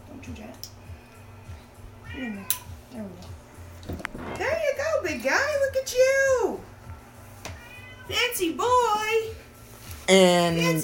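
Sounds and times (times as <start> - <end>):
low hum: 0.0 - 10.8
speech: 0.2 - 0.8, 2.2 - 4.4, 5.1 - 6.7, 8.1 - 9.4, 10.1 - 10.8
cat meowing: 2.0 - 2.8, 7.5 - 8.3.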